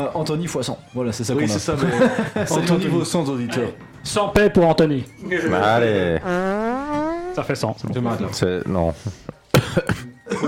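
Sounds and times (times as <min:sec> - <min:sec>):
speech: 0:00.0 - 0:06.6, 0:07.4 - 0:10.4
laughter: 0:01.8 - 0:02.7
person coughing into a microphone: 0:09.6 - 0:10.4.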